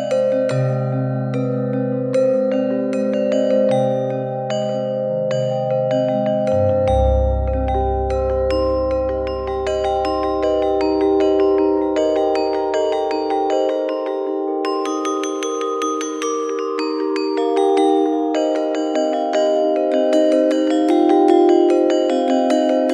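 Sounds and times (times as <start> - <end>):
gamelan music: 0.1 - 22.8.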